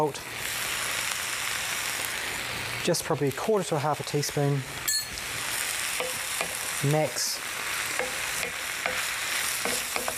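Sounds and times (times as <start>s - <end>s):
speech: 0.0s - 0.4s, 2.8s - 4.9s, 6.8s - 7.3s
salted vegetables frying crisp in a pan: 0.0s - 10.1s.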